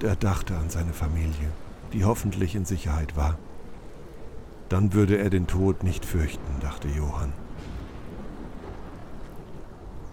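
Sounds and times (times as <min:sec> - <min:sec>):
speech: 0:00.0 - 0:03.5, 0:04.7 - 0:07.4
constant wash of rain: 0:00.0 - 0:10.1
deep rumble of thunder: 0:00.0 - 0:10.1
wind: 0:00.0 - 0:10.1.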